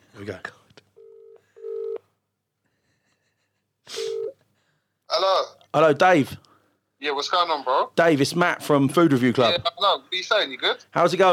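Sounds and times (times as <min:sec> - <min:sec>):
speech: 0:00.2 - 0:00.6, 0:05.3 - 0:11.3
phone ringing tone through the speakerphone of an Android phone during an outgoing call: 0:01.0 - 0:02.1, 0:04.1 - 0:04.4.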